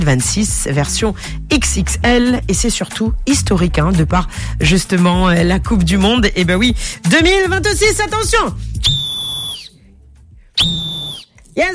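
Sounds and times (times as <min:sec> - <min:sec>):
speech: 0:00.0 - 0:09.0, 0:10.6 - 0:11.0, 0:11.6 - 0:11.7
referee's whistle blasts: 0:08.8 - 0:09.8, 0:10.6 - 0:11.3.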